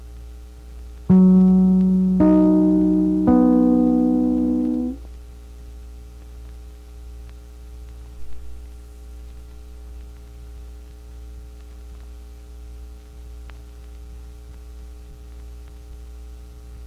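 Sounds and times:
quiet hiss: 1.1s - 5.0s
radio network identification chime notes: 1.1s - 5.0s.

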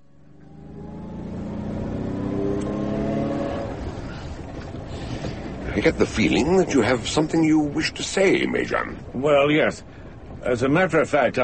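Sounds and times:
car engine rumbling and revving up: 0.0s - 11.4s
speech: 5.8s - 11.4s.

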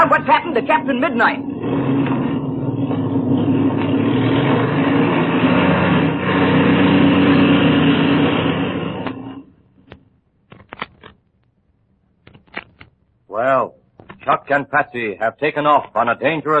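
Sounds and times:
airplane engine warming up while taxiing: 0.0s - 9.6s
speech: 0.6s - 2.1s, 14.5s - 16.5s
faint clicks and knocks: 9.8s - 13.1s, 13.9s - 14.6s.

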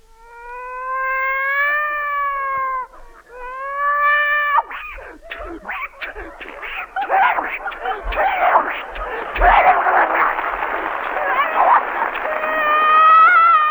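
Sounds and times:
drawn-out rising and falling cat yowls: 0.4s - 13.6s
laughter: 2.4s - 13.6s.

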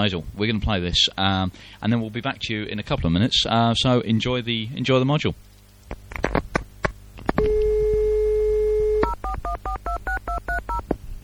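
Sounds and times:
speech: 0.0s - 6.3s
telephone dial tone: 7.4s - 10.8s.

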